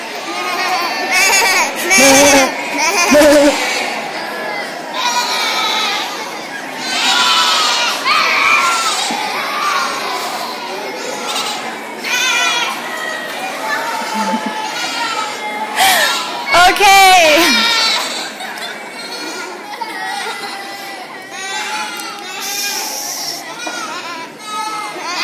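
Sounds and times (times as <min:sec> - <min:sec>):
crowd of children and adults bleating like sheep: 0:00.0 - 0:25.2
laughter: 0:00.3 - 0:06.9, 0:07.8 - 0:16.5, 0:17.3 - 0:21.4.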